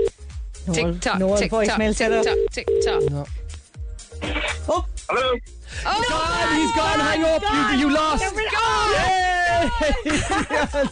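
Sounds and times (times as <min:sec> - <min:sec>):
speech: 0:00.7 - 0:03.4, 0:04.2 - 0:10.8
phone call ringing tone as a number is dialed: 0:02.1 - 0:03.1
several people talking and laughing loudly on a radio show: 0:05.8 - 0:10.8.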